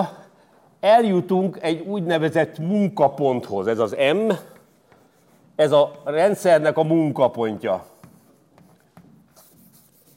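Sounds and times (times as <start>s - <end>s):
speech: 0.8s - 4.5s, 5.6s - 7.9s
faint writing on a board: 3.9s - 10.1s.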